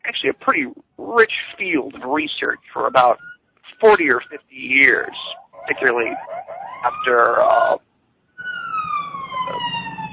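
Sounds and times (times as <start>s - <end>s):
speech: 0.2s - 7.8s
emergency vehicle siren wailing on a city street in New York: 2.4s - 7.8s, 8.4s - 10.1s.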